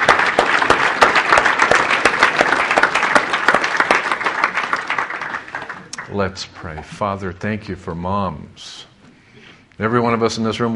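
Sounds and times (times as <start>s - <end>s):
large crowd applauding: 0.0s - 6.6s
speech: 6.1s - 8.9s, 9.8s - 10.7s.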